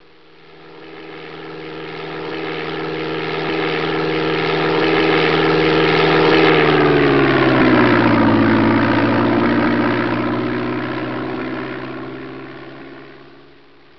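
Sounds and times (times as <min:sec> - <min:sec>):
biplane: 0:00.0 - 0:13.9.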